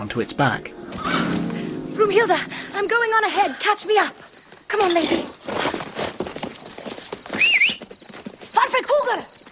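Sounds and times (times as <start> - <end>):
speech: 0.0 - 1.2, 2.1 - 5.6
white horse walking forward, hoofbeats: 4.4 - 9.5.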